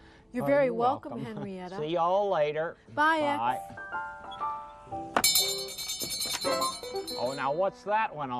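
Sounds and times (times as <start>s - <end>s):
speech: 0.4s - 4.2s, 6.4s - 8.3s
bell ringing with bright metallic tones: 5.2s - 7.7s.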